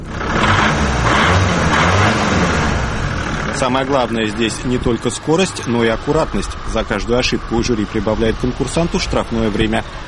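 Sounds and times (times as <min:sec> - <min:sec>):
bus engine rumbling during driving maneuvers: 0:00.0 - 0:10.0
speech: 0:03.6 - 0:10.0.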